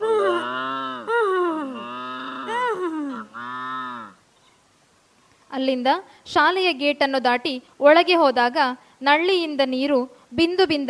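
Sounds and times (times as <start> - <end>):
cattle lowing in a school cowshed: 0.0 - 4.2
speech: 5.6 - 10.8.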